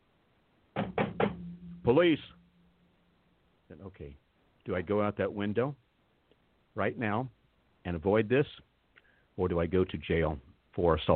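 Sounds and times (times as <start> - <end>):
firm knocking on a door: 0.8 - 1.6
speech: 1.8 - 2.4, 3.7 - 5.8, 6.8 - 8.7, 9.4 - 11.1.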